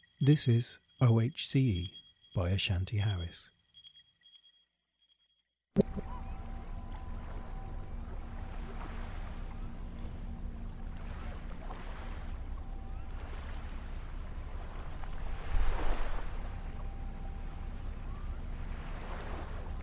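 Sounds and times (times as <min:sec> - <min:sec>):
speech: 0:00.2 - 0:03.6
light wind: 0:05.8 - 0:19.8
low mechanical hum from a ship in a harbour: 0:05.8 - 0:19.8
water lapping in a harbour: 0:05.8 - 0:19.8.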